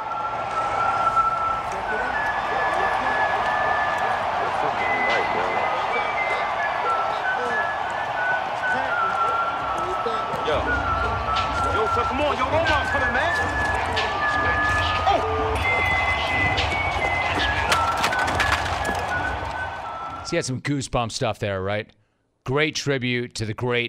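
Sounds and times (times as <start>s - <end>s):
large stadium crowd roaring and cheering: 0.0s - 20.4s
whistled tune echoing across a huge stadium: 0.0s - 20.4s
speech: 20.3s - 23.8s.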